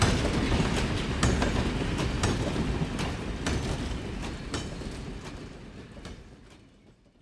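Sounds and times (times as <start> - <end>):
steam locomotive rushing through a station in snowy weather: 0.0 - 6.4
locomotive wheels clacking over rail joints: 0.0 - 7.2.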